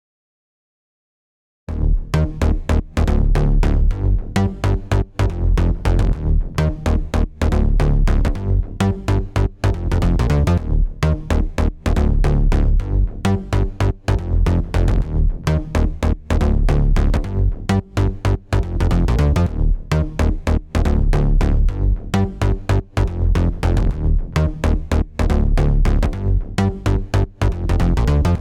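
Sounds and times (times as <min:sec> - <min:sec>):
bass with clipper on: 0:01.7 - 0:28.4.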